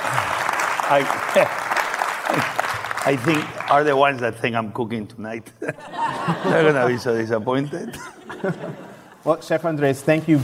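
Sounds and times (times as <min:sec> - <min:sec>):
audience applause from a large crowd: 0:00.0 - 0:04.2
speech: 0:00.9 - 0:01.7, 0:02.3 - 0:10.4
laughter: 0:05.5 - 0:09.3.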